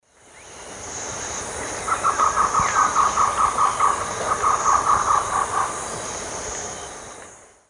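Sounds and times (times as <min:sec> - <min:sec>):
female Trogon melanurus calling in South American Eastern Lowlands: 0:01.8 - 0:05.9.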